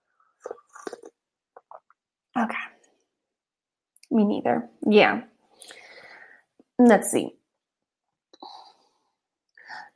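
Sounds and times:
person sipping tea: 0.4 - 1.8
speech: 4.2 - 5.8, 6.8 - 7.4.

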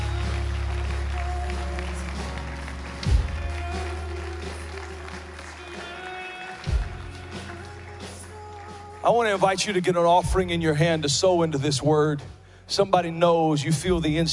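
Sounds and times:
audience clapping in a large room: 0.0 - 10.4
speech: 9.0 - 14.3.

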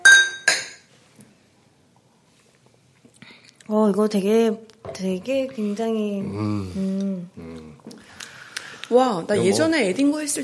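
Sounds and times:
glasses of beer clinking in a toast: 0.0 - 0.9
speech: 3.7 - 7.5, 8.9 - 10.4.

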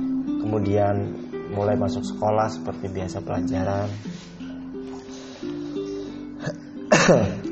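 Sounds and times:
speech: 0.5 - 4.4, 7.1 - 7.5
person coughing: 6.4 - 7.5.

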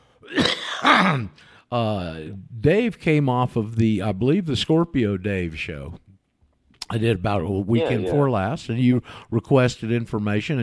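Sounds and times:
man clearing throat: 0.2 - 1.4
speech: 0.2 - 6.0, 6.9 - 10.6.

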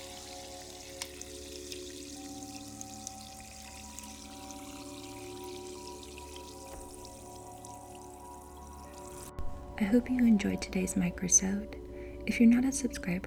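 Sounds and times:
seltzer water pouring into a glass over ice: 0.0 - 9.4
speech: 9.8 - 13.2.

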